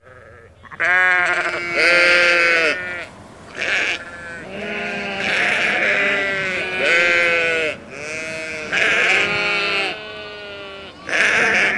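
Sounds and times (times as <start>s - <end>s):
sheep bleating: 0.0s - 11.7s.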